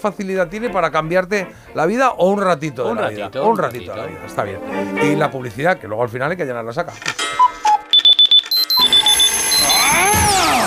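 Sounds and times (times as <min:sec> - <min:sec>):
speech: 0:00.0 - 0:07.6
electronic alarm clock beeping and ringing: 0:07.3 - 0:10.2.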